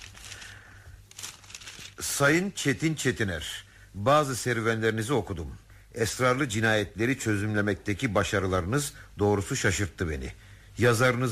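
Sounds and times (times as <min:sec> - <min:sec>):
paper letter crinkling as it is unfolded: 0:00.0 - 0:02.2
speech: 0:02.1 - 0:11.3.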